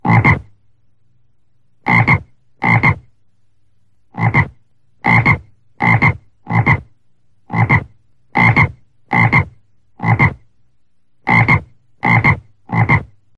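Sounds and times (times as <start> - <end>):
frog croaking: 0.0 - 0.5, 1.8 - 3.1, 4.1 - 6.9, 7.5 - 10.5, 11.2 - 13.2
faint low hum: 0.0 - 13.3.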